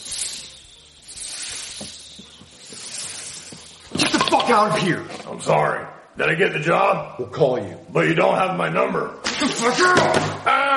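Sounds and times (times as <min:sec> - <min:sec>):
person imitating a snake hiss: 0:00.0 - 0:04.0
speech: 0:04.5 - 0:10.6.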